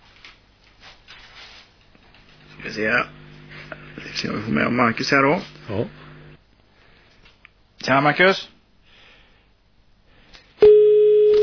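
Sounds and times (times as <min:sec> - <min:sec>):
speech: 0:02.7 - 0:03.2, 0:04.0 - 0:06.0, 0:07.9 - 0:08.6
telephone busy tone after a caller is disconnected from a live call-in: 0:10.6 - 0:11.4.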